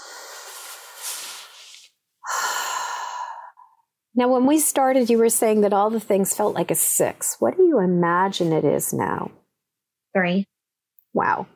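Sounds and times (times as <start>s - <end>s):
deep breath with hands over the heart during a calming tapping exercise: 0.0s - 3.8s
speech: 4.2s - 9.4s, 10.1s - 10.5s, 11.1s - 11.5s.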